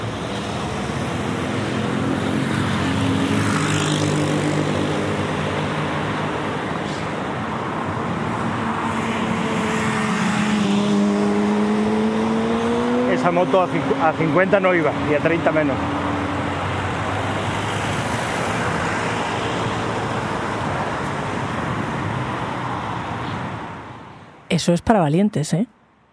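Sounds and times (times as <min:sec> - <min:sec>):
cars whooshing past at full speed on a highway: 0:00.0 - 0:24.4
motorbikes whooshing past at full speed on a highway: 0:00.4 - 0:07.4, 0:08.2 - 0:20.9
speech: 0:13.3 - 0:16.0, 0:24.6 - 0:25.8.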